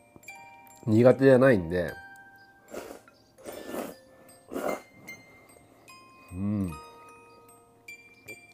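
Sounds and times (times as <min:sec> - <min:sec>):
speech: 0:00.8 - 0:02.0
person slurping and chewing ramen noodles: 0:02.7 - 0:04.9.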